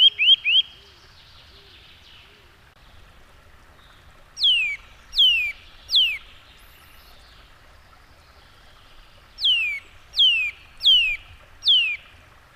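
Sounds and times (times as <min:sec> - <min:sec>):
faint background hiss: 0:00.0 - 0:12.5
Eurasian nuthatch calling with loud downslurred whistled notes: 0:04.4 - 0:07.2, 0:09.4 - 0:12.0.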